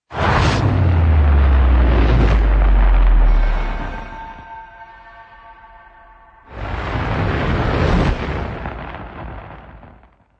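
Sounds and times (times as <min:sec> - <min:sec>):
sub bass: 0:00.0 - 0:06.6
fire burning: 0:00.1 - 0:03.9, 0:06.5 - 0:10.3.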